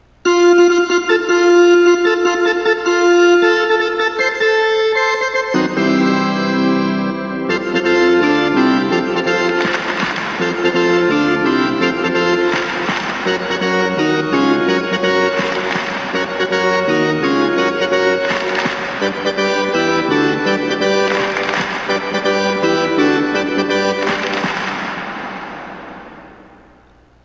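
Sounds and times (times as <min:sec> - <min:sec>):
organ: 0:00.0 - 0:27.2
hand claps: 0:07.7 - 0:27.0.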